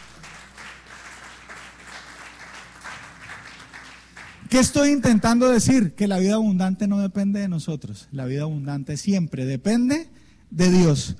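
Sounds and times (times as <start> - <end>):
congregation applauding: 0.0 - 4.8
speech: 4.5 - 11.1.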